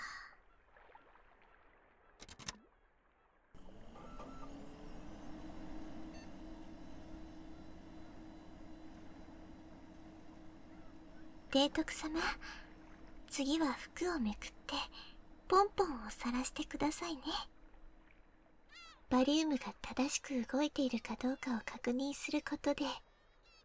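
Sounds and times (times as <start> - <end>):
stomach X-ray machine clicks: 2.2 - 2.6
stomach X-ray machine low mechanical hum: 3.6 - 23.6
speech: 11.5 - 12.6, 13.3 - 17.6, 19.1 - 23.0.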